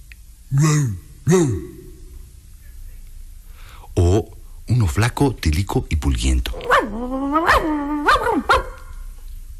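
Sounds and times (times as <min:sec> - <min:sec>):
speech: 0:00.5 - 0:01.7, 0:05.0 - 0:07.8
old dog barking with deep woofs: 0:06.6 - 0:09.0.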